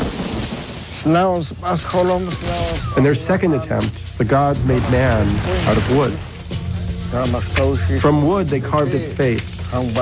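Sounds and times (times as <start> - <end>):
rumbling thunder in a great storm: 0.0 - 1.8, 4.1 - 8.5
heavy rain in a great storm: 0.0 - 8.5
speech: 1.0 - 6.3, 7.1 - 10.0.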